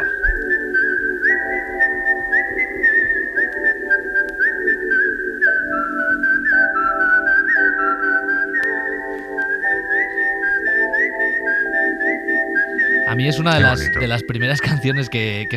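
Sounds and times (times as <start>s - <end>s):
sustained instrumental backing of layered chords: 0.0s - 14.8s
whistled film theme melody: 0.0s - 15.5s
speech: 13.2s - 15.5s.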